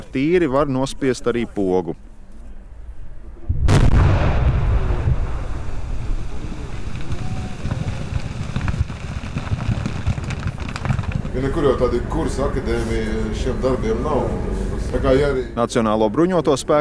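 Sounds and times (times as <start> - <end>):
speech: 0.1 - 2.1, 11.4 - 16.7
wind noise: 3.4 - 12.9
explosive charges blasting river ice: 3.5 - 13.7
rumbling roar of debris and water settling outdoors: 3.7 - 14.5.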